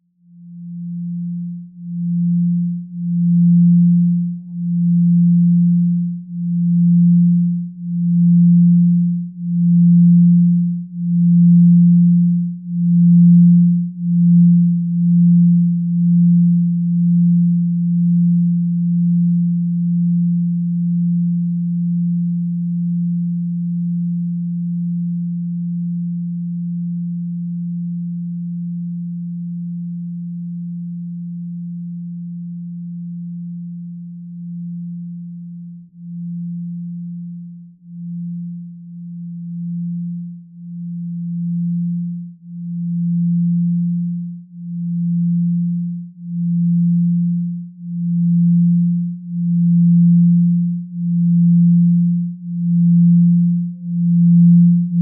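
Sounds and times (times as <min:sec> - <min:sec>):
set of singing bowls sounding their fundamental: 0:00.2 - 0:54.9.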